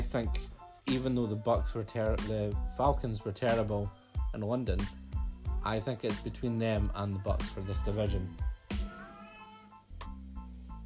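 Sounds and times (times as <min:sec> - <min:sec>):
speech: 0:00.1 - 0:05.0, 0:05.6 - 0:08.5
cat meowing: 0:08.9 - 0:09.7.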